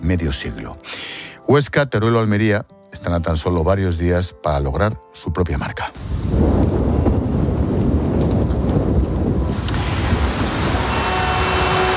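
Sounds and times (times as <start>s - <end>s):
speech: 0.1s - 6.6s
heavy rain falling: 6.0s - 11.9s.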